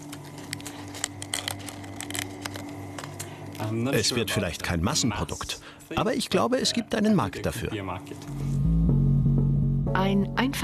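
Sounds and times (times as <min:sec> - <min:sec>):
crunching dried jellyfish chips: 0:00.0 - 0:03.7
low hum: 0:00.0 - 0:10.6
speech: 0:03.6 - 0:08.6, 0:10.0 - 0:10.6.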